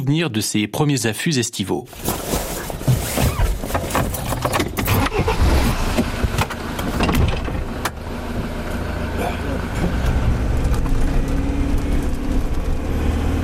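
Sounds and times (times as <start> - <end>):
speech: 0.0 - 2.9
4x4 off-road vehicle engine climbing uphill in Switzerland: 3.3 - 13.4.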